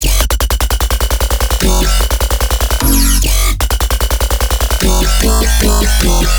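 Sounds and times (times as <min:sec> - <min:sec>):
dubstep bass loop in F sharp: 0:00.0 - 0:06.3.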